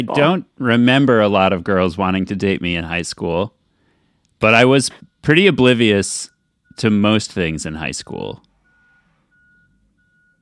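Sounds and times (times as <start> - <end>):
speech: 0.0 - 3.6, 4.4 - 8.5
truck reversing alarm beeping: 5.1 - 7.2, 8.6 - 10.4.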